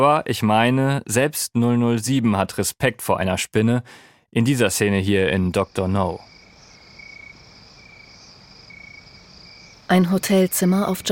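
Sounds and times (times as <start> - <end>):
speech: 0.0 - 6.3, 9.9 - 11.1
crickets chirping on a hot moonlit night in Jamaica: 4.5 - 11.1.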